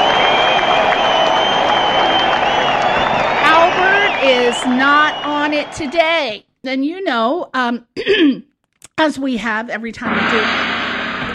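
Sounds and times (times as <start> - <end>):
applause sound effect of a crowd clapping: 0.0 - 6.0
cheering noise: 0.0 - 6.4
speech: 4.6 - 10.8.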